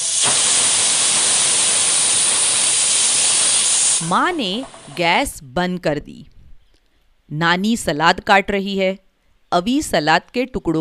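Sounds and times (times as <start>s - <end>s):
pressure cooker whistle releasing steam: 0.0s - 5.1s
speech: 4.0s - 6.3s, 7.3s - 10.7s.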